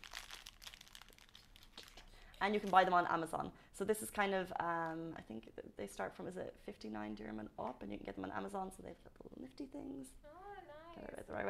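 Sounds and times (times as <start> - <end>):
thin plastic mask packaging crinkling: 0.0 - 3.1
speech: 2.4 - 10.4, 11.0 - 11.4.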